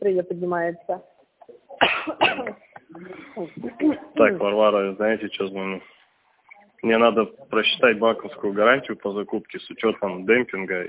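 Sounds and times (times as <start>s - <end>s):
speech: 0.0s - 1.2s, 1.8s - 6.0s, 6.8s - 10.8s
woman coughing after choking: 1.8s - 2.6s.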